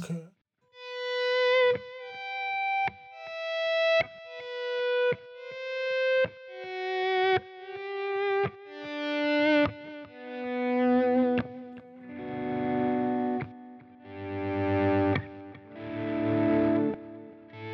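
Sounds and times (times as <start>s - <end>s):
distorted electric guitar through effects unit auto volume echo: 1.2s - 17.7s.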